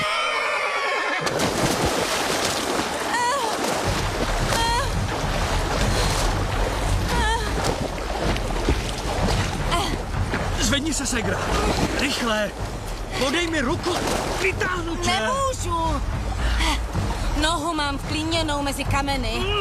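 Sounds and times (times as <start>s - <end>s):
horse whinnying: 0.0s - 1.3s
river rushing loudly: 1.2s - 18.9s
low rumble: 3.7s - 19.6s
speech: 11.0s - 16.8s, 17.4s - 19.6s.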